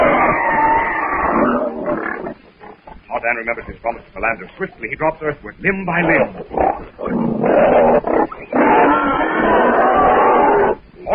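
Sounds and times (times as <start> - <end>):
wild boar grunting and snorting as it darts across a trail: 0.0 - 3.1, 5.9 - 11.1
speech: 3.2 - 8.3.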